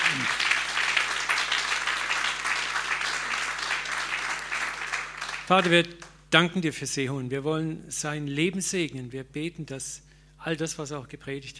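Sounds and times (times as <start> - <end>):
audience applause: 0.0 - 5.8
speech: 5.5 - 11.5.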